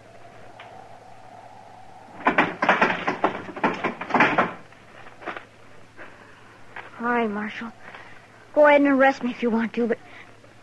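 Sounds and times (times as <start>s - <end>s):
door being opened: 2.1s - 4.7s
speech: 7.2s - 8.0s, 8.6s - 10.1s.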